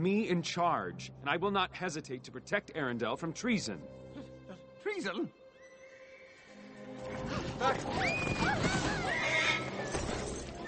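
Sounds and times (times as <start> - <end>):
speech: 0.0 - 4.0, 4.8 - 5.4, 7.0 - 9.2
horse neighing and whinnying: 7.5 - 10.6.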